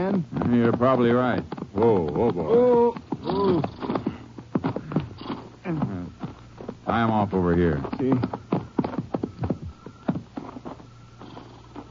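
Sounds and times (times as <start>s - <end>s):
speech: 0.0s - 3.9s, 6.9s - 8.4s
horses halted by riders in the mountains, hooves clopping: 0.0s - 11.8s
horse whinnying: 2.4s - 4.3s.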